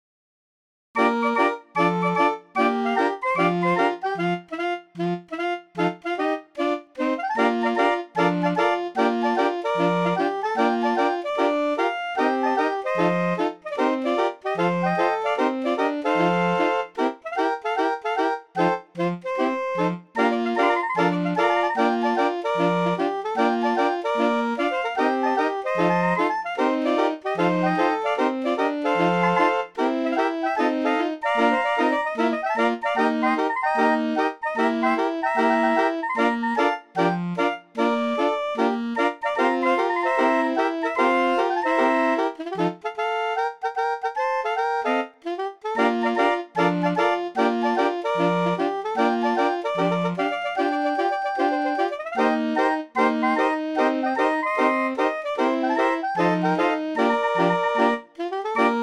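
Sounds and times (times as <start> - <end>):
street organs playing a Christmas rock song: 1.0 - 58.8.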